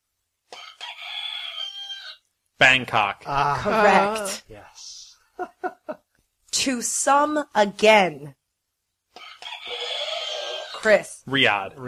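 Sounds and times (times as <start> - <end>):
rooster crowing: 0.5 - 2.2, 9.2 - 10.8
speech: 2.6 - 8.4, 10.8 - 11.8
laughter: 5.4 - 6.0.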